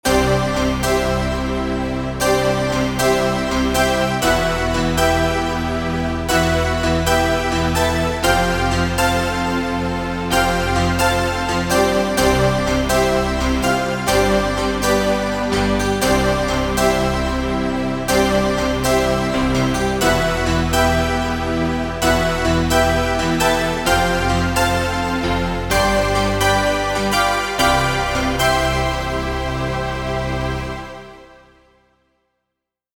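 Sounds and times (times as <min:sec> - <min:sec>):
glitter pad: 0:00.1 - 0:31.6.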